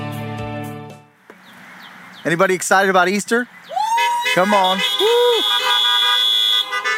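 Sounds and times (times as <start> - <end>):
speech: 2.3 - 3.5, 4.3 - 5.7
car horns honking: 4.3 - 6.9.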